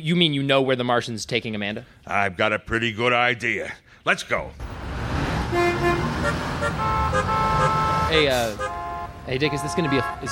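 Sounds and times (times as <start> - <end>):
speech: 0.0 - 4.7, 5.5 - 10.3
several car horns honking in traffic: 4.6 - 10.3
steady rumble of road traffic: 4.6 - 10.3.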